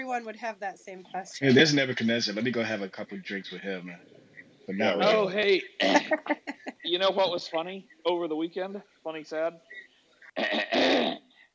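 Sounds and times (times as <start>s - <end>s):
speech: 0.1s - 9.8s, 10.4s - 11.2s
laughter: 4.7s - 7.7s
harsh rasping cough: 5.8s - 6.2s, 10.4s - 11.2s.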